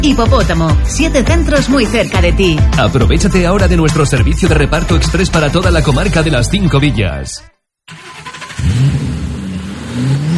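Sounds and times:
speech: 0.0 - 8.0
car engine revving: 7.9 - 10.3.

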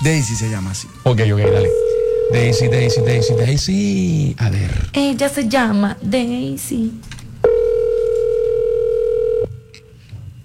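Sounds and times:
speech: 0.0 - 7.2
ringback tone on an outgoing phone call: 1.4 - 3.5, 7.4 - 9.6.

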